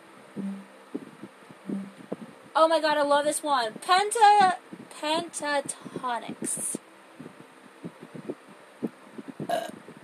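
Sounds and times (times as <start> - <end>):
speech: 2.6 - 6.8
person burping: 9.5 - 9.8.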